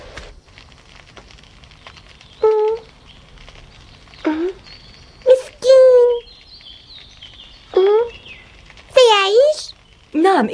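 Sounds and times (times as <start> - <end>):
small bird on ice calling: 1.7 - 10.5.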